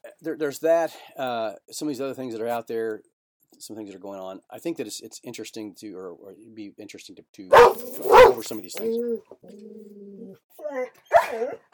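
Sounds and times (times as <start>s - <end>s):
speech: 0.2s - 10.0s, 10.6s - 11.7s
dog barking: 7.5s - 9.0s, 11.1s - 11.7s
dog whimpering: 7.6s - 11.7s.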